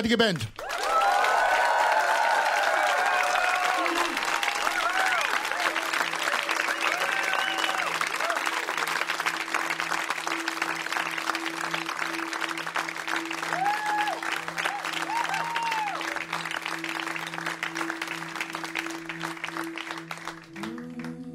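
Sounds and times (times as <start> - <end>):
speech: 0.0 - 0.6
sizable crowd applauding: 0.4 - 21.1
scattered cheers: 0.6 - 8.9, 13.4 - 16.4.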